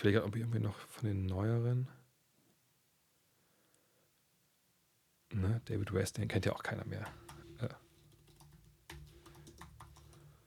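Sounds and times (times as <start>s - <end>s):
speech: 0.0s - 2.0s, 5.3s - 7.8s
rapid typing on a new computer keyboard: 7.0s - 10.4s.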